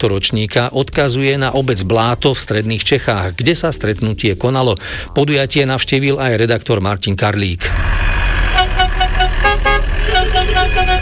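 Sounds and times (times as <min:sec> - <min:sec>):
speech: 0:00.0 - 0:08.0
steady engine running: 0:07.6 - 0:11.0
outdoor rumble: 0:07.7 - 0:11.0
vintage motorhome horn honking at a retro motorhome meet in Bláto, Czech Republic: 0:07.7 - 0:11.0.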